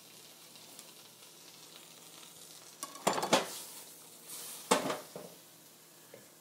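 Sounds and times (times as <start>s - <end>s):
soft hiss of garlic and water chestnut liquid in a sizzling pan: 0.0s - 6.3s
clattering pan and utensils: 2.8s - 3.6s, 4.6s - 5.4s.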